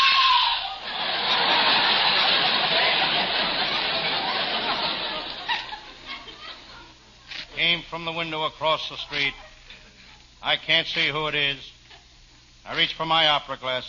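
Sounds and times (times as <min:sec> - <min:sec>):
woman screaming: 0:00.0 - 0:00.8
laughter: 0:00.7 - 0:07.5
speech: 0:07.8 - 0:09.5, 0:10.4 - 0:11.8, 0:12.6 - 0:13.8.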